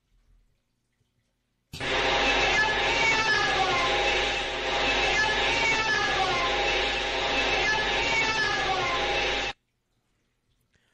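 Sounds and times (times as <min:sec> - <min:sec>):
eerie wail like a distorted moaning voice in an abandoned house: 0:01.8 - 0:09.6
static hiss of a ghost-hunting psychophony recording: 0:01.8 - 0:09.6.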